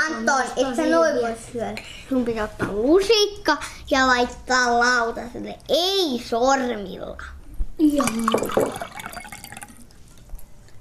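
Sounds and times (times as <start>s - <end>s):
speech: 0.2s - 9.0s
cold water being poured into a glass: 8.0s - 10.2s.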